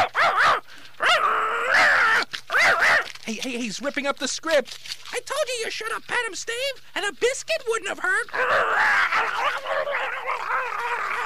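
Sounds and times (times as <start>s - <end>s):
dog barking: 0.0s - 3.1s, 8.4s - 11.2s
speech: 3.3s - 10.9s.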